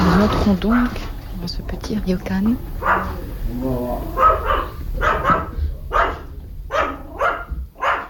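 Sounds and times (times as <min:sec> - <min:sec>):
low rumble: 0:00.2 - 0:08.0
speech: 0:00.3 - 0:04.6
dog barking to greet visitors at a small ryokan inn: 0:02.7 - 0:03.3, 0:04.1 - 0:08.0.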